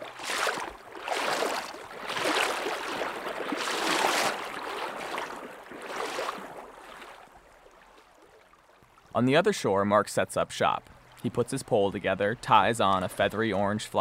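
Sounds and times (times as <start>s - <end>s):
steady rushing wash of river water: 0.0s - 7.2s
heavy sloshing and splashing of someone wading through rushing river water: 0.0s - 9.2s, 10.8s - 11.5s
speech: 9.2s - 13.9s.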